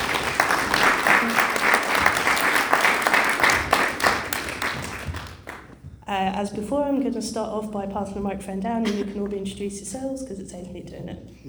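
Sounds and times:
audience applause: 0:00.0 - 0:05.7
speech: 0:06.1 - 0:11.4.

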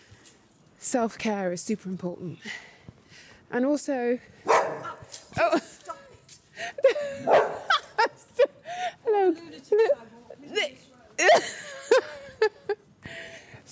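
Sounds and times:
speech: 0:00.9 - 0:02.7, 0:03.5 - 0:05.7
dog barking: 0:04.5 - 0:05.0, 0:07.2 - 0:07.7
laughter: 0:06.6 - 0:10.0, 0:11.2 - 0:12.8.

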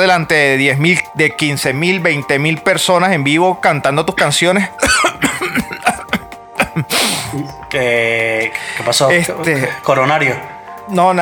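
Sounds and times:
speech: 0:00.0 - 0:05.6, 0:07.7 - 0:11.2
laughter: 0:04.8 - 0:07.2
person coughing: 0:04.8 - 0:07.5.

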